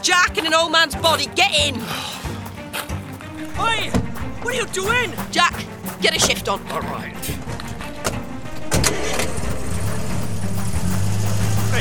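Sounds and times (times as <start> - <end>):
speech: 0.0 - 2.2, 3.6 - 7.7
car engine cranking, starting and pulling away: 3.3 - 11.8.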